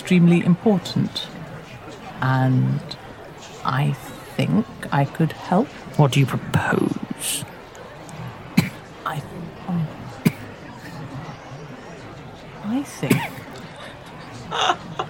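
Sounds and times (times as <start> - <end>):
speech: 0.1 - 1.4, 2.2 - 3.0, 3.6 - 7.5, 12.7 - 13.4
laughter: 8.0 - 15.0
person coughing with something caught in throat: 8.6 - 8.8, 10.2 - 10.5, 13.1 - 13.5.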